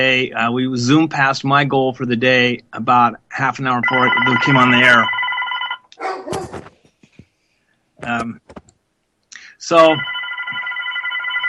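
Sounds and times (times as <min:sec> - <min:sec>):
speech: 0:00.0 - 0:05.2, 0:08.0 - 0:08.6, 0:09.6 - 0:10.2
telephone ringing with electronic trill in a liquor store: 0:03.8 - 0:05.9, 0:09.8 - 0:11.4.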